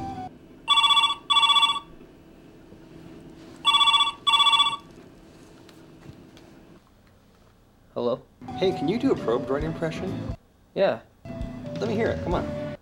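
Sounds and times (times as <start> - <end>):
telephone ringing with bright trilling electronic bursts: 0.7 - 2.0, 3.6 - 4.9
speech: 8.6 - 11.1, 11.8 - 12.6.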